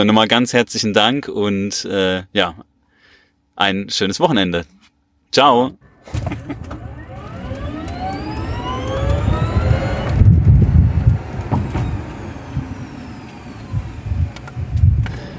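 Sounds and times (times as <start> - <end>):
speech: 0.0 - 2.7, 3.6 - 6.7
high whine climbing in pitch as the car speeds up: 6.1 - 15.3
low rumble of road noise inside a moving car: 6.2 - 15.3.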